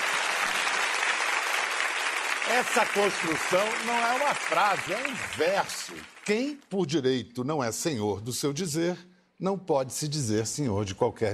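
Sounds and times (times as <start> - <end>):
audience applause: 0.0 - 6.6
speech: 2.5 - 11.3.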